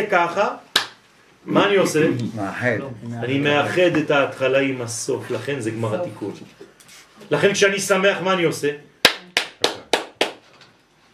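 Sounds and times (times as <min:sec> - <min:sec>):
speech: 0:00.0 - 0:00.7, 0:01.4 - 0:08.9
hands clapping: 0:00.7 - 0:01.0, 0:09.0 - 0:10.5.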